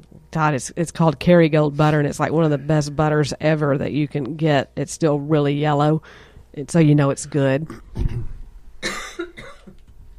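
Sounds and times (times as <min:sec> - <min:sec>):
speech: 0:00.4 - 0:07.9
person coughing: 0:07.7 - 0:09.8.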